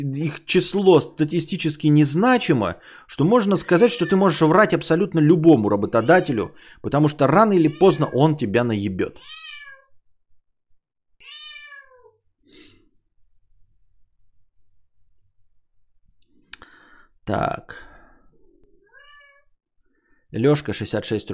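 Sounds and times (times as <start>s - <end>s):
speech: 0.0s - 9.4s, 17.3s - 17.9s, 20.3s - 21.3s
cat meowing: 3.6s - 4.4s, 5.9s - 6.4s, 7.4s - 8.2s, 9.2s - 10.0s, 11.2s - 12.2s, 18.8s - 19.6s.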